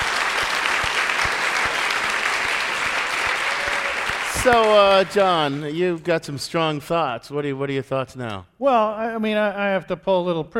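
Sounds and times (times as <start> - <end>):
live audience applause: 0.0 - 6.0
speech: 4.4 - 10.5.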